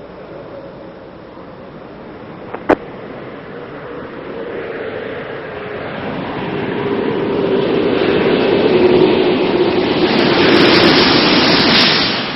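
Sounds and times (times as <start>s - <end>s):
space shuttle orbiter touching down on runway rushing roar: 2.7s - 12.3s.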